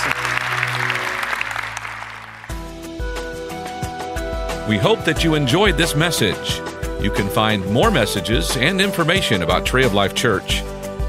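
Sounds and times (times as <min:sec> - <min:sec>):
audience applause: 0:00.0 - 0:02.6
instrumental music with a steady beat: 0:00.0 - 0:11.0
speech: 0:04.7 - 0:10.8.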